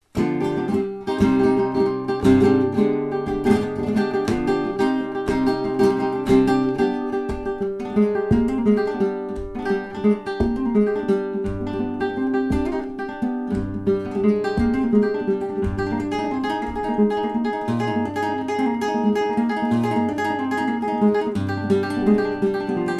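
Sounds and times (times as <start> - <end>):
fandango flamenco music: 0.0 - 22.9.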